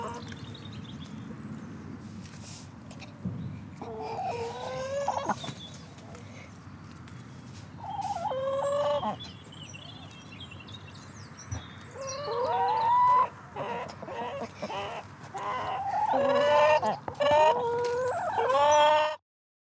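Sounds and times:
chickens clucking and squawking on a farm, waiting to be fed: 0.0 - 0.4, 3.8 - 6.2, 7.8 - 10.2, 11.5 - 19.2.

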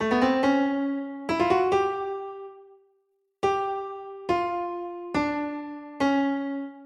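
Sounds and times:
pianos and keyboards: 0.0 - 6.8.

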